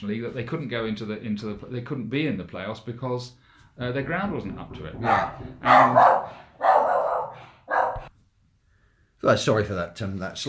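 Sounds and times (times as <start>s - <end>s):
speech: 0.0s - 6.5s, 9.2s - 10.4s
dog barking: 5.0s - 8.1s.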